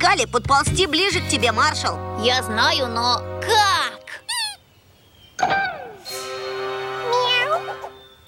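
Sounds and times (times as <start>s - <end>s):
speech: 0.0s - 3.7s, 5.4s - 5.6s
frightened cat meowing: 7.1s - 7.8s.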